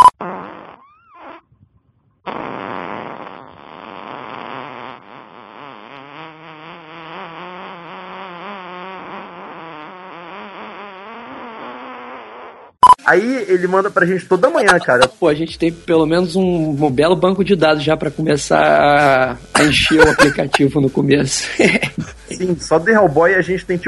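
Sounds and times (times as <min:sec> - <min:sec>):
loud drawn-out fart in a phone audio message: 0:00.0 - 0:01.6, 0:02.2 - 0:13.0, 0:14.4 - 0:15.2, 0:18.6 - 0:20.8
speech: 0:13.1 - 0:23.8
laughter: 0:14.4 - 0:15.2, 0:19.6 - 0:22.4.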